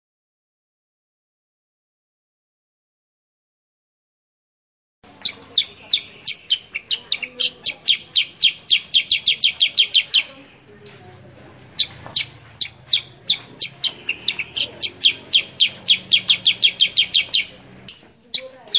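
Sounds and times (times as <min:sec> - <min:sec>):
sooty-headed bulbul singing in rapid clipped chirps: 0:05.1 - 0:10.5, 0:11.6 - 0:18.7.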